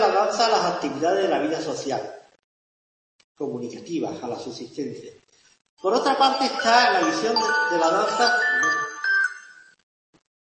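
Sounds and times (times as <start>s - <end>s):
speech: 0.3s - 2.2s, 3.4s - 5.2s, 5.8s - 8.9s
mobile phone ringtone chiming melody: 6.0s - 9.8s.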